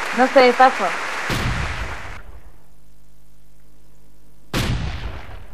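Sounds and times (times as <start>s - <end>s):
speech: 0.1s - 1.5s
quiet low hum: 1.0s - 5.5s
loud booming gunshot blasts with rumbling tails: 1.3s - 2.6s, 4.5s - 5.5s.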